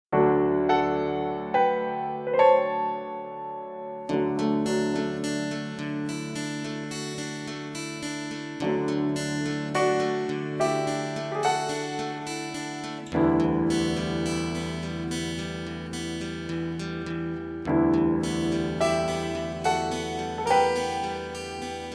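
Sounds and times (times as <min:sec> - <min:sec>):
backing track without backing vocals: 0:00.7 - 0:21.9.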